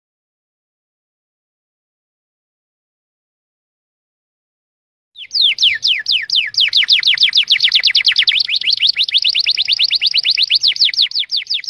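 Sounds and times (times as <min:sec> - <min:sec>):
songbird singing high clear whistled notes: 0:05.2 - 0:11.6.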